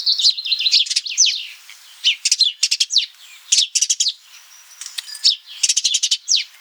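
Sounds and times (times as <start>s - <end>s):
house sparrow chirping, Passer domesticus: 0.0s - 6.5s.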